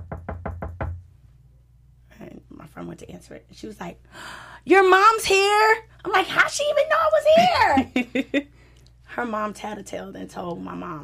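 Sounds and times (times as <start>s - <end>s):
knocking on a door: 0.0s - 1.1s
speech: 2.8s - 8.6s, 9.2s - 11.0s.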